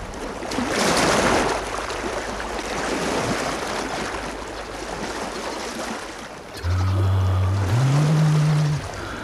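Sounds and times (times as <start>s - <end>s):
sea waves: 0.0s - 9.2s
low droning hum: 6.6s - 9.2s.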